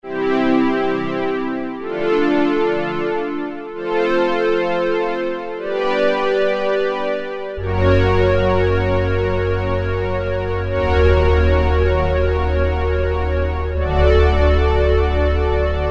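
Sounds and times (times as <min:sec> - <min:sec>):
brass and strings factory preset on Roland Juno-106 synthesizer: 0:00.0 - 0:15.8.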